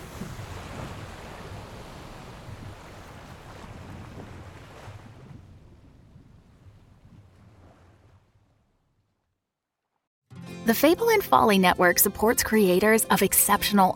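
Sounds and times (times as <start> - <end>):
rushing water as a raft moves over a river: 0.0 - 5.2
surf-like wash of churning water: 0.0 - 5.5
wind noise: 0.0 - 8.2
speech: 10.7 - 13.9.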